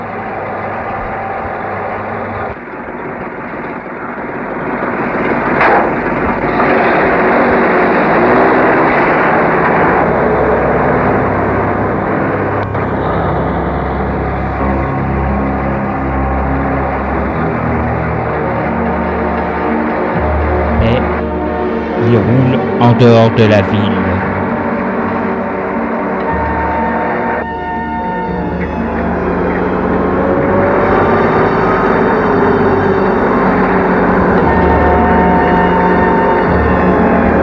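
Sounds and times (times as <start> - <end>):
large truck engine droning while driving through a city: 0.0 - 37.4
sharp knocks and clatters: 4.7 - 7.7
speech: 23.0 - 24.0.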